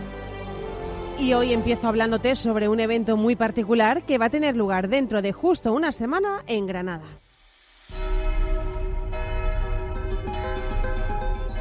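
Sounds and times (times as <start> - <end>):
speech: 1.2 - 7.2
church bells ringing: 7.9 - 11.5.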